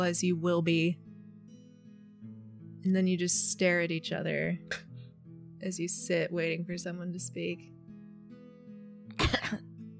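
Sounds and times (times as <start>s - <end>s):
speech: 0.0s - 1.1s, 2.8s - 4.9s, 5.6s - 7.8s
single short cough: 9.1s - 9.7s.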